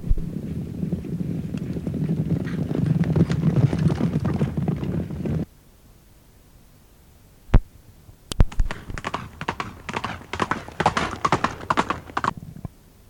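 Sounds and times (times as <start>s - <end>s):
horses galloping hard with thudding hoofbeats: 0.0s - 5.5s, 8.4s - 12.7s.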